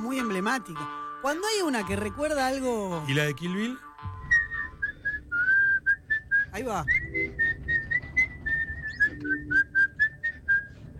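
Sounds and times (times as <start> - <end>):
speech: 0.0 - 3.9, 6.6 - 7.4
whistled film theme melody: 3.8 - 10.9.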